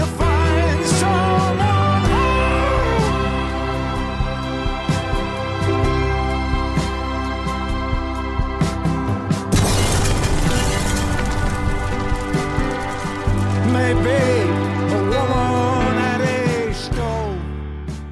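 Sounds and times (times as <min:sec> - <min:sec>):
music with sustained tones: 0:00.0 - 0:17.8
explosion: 0:09.5 - 0:14.3.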